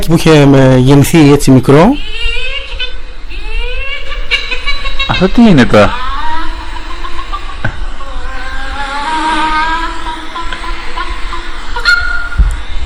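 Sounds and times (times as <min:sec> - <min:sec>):
speech: 0:00.1 - 0:02.3, 0:05.1 - 0:06.0
laughter: 0:03.6 - 0:12.4
noisy crowd-like background: 0:06.0 - 0:12.7
people imitating a chicken in a chicken-imitation contest in America: 0:06.4 - 0:12.4.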